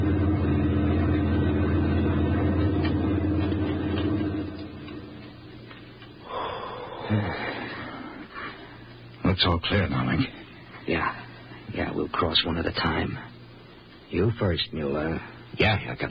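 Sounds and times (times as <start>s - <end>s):
heavy army lorry rumbling past on a highway: 0.0s - 5.2s
sharp breaths: 6.2s - 9.0s
speech: 9.4s - 13.3s, 14.1s - 16.0s.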